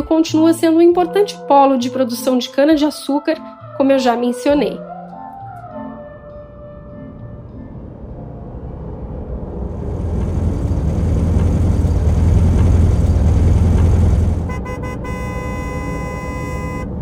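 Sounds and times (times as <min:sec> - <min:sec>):
speech: 0:00.0 - 0:04.9
heavy truck engine rumbling and idling as the truck arrives: 0:09.3 - 0:17.0
steady sustained horn tone: 0:10.2 - 0:17.0.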